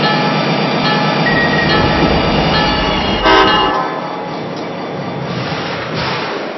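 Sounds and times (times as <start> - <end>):
passenger train rumble pulling into a station: 0.0 - 6.5
short horn-like blast of a passenger train: 1.2 - 4.2
metallic squealing of a passenger train: 1.2 - 5.0.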